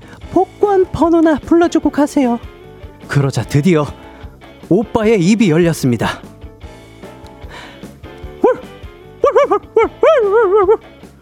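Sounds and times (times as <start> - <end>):
speech: 0.4 - 2.5, 3.1 - 4.0, 4.7 - 6.3
dog barking: 8.4 - 9.6.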